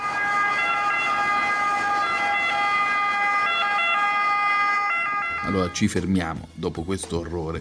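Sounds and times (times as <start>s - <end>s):
ambulance siren wailing: 0.0s - 6.1s
speech: 5.5s - 7.5s.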